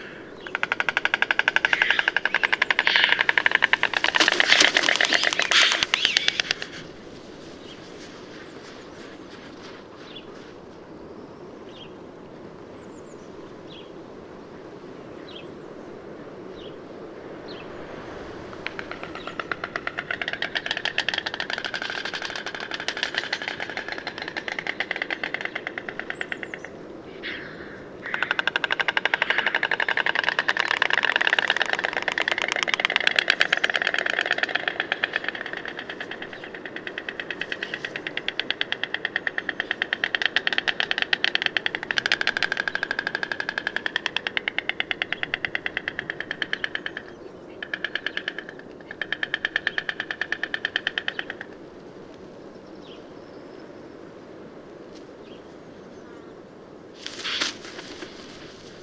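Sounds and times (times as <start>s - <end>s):
birdcall: 0.0s - 10.5s, 17.4s - 51.5s, 57.0s - 58.8s.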